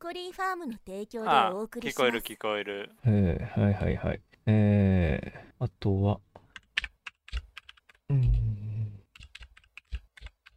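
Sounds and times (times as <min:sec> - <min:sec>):
speech: 0:00.1 - 0:06.3, 0:08.1 - 0:08.6
typing slowly and hard on a mechanical keyboard with red switches: 0:06.6 - 0:08.0, 0:09.1 - 0:10.5.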